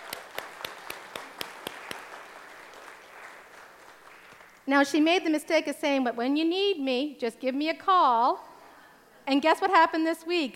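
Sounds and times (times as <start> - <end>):
audience applause: 0.0 - 4.6
speech: 4.7 - 8.5, 9.3 - 10.5.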